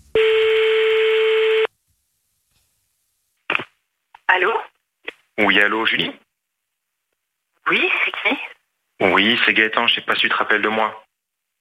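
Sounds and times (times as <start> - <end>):
telephone ring tone on an outgoing call: 0.2 - 1.7
speech: 4.4 - 4.7, 5.4 - 6.2, 7.7 - 11.0.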